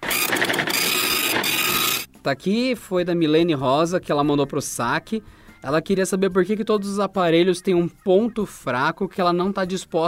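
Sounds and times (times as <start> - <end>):
printer printing out a page: 0.0 - 2.1
speech: 2.2 - 10.0.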